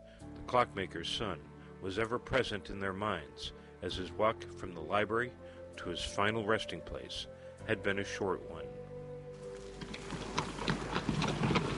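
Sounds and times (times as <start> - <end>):
speech: 0.5 - 8.6
horse-drawn stagecoach hooves clip-clopping on a road: 9.4 - 11.7.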